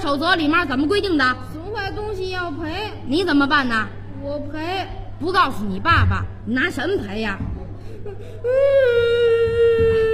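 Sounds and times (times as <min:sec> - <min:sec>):
speech: 0:00.0 - 0:09.2
child crying: 0:08.0 - 0:10.1.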